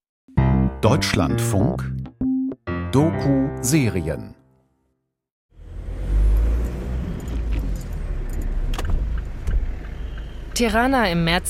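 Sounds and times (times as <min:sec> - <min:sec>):
speech: 0:00.8 - 0:02.0, 0:02.9 - 0:04.4, 0:10.6 - 0:11.4
rush-hour city traffic in Tirana heard from inside a parked car: 0:05.5 - 0:11.4.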